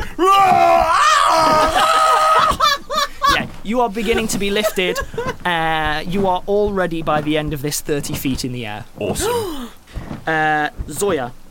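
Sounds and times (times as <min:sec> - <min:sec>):
high-pitched panicked yell: 0:00.2 - 0:03.4
laughter: 0:01.6 - 0:05.5
speech: 0:03.7 - 0:11.4.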